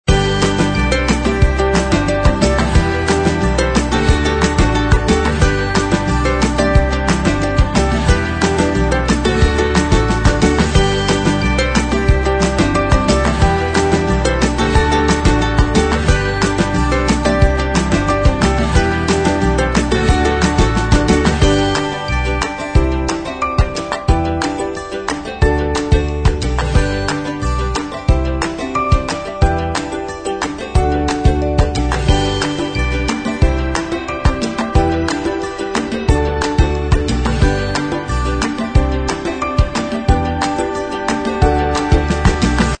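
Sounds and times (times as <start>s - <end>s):
happy energetic upbeat indie corporate music loop: 0.1s - 42.7s.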